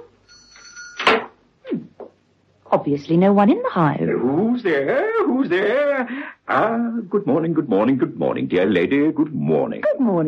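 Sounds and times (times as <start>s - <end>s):
shop door creaking open: 0.8s - 1.4s
speech: 2.7s - 10.2s.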